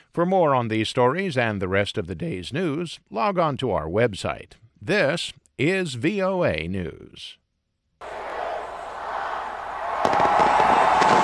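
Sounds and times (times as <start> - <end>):
speech: 0.2 - 7.4
crowd noise: 8.0 - 11.2
New Year's fireworks popping and crackling: 10.0 - 11.2.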